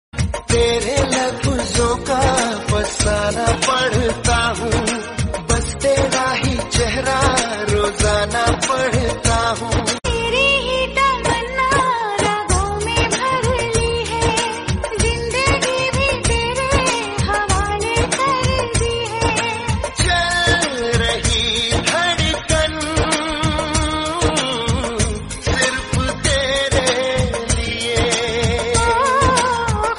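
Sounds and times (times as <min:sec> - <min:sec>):
Hindi romantic Bollywood ringtone music: 0:00.2 - 0:29.9.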